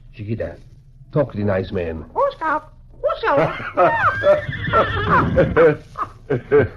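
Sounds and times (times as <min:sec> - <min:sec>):
speech: 0:00.2 - 0:06.7
laughter: 0:03.4 - 0:06.7
horse whinnying: 0:04.0 - 0:05.6.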